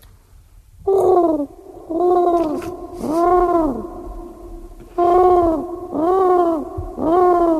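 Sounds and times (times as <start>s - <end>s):
person imitating pigeon cooing with warbling vocal coos: 0.9s - 4.4s, 5.0s - 7.5s.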